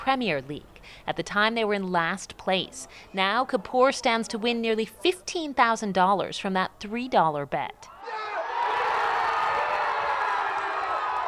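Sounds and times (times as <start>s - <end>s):
speech: 0.1s - 7.9s
Premier League football crowd cheering a goal: 7.9s - 11.2s.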